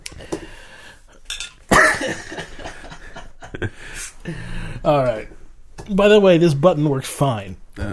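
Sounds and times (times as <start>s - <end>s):
glassware clinking: 1.3s - 1.6s
person coughing after a drink went down the wrong pipe: 1.7s - 2.6s
speech: 3.6s - 7.9s.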